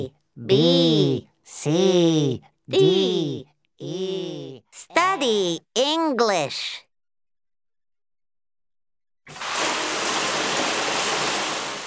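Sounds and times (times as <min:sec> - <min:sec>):
speech: 0:00.0 - 0:04.3, 0:04.9 - 0:06.8
shower water running: 0:09.3 - 0:11.8.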